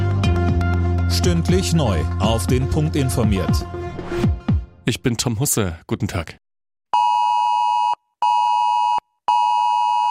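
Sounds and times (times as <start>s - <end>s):
speech: 1.1s - 6.4s
smartphone emergency alert tone: 7.0s - 10.0s.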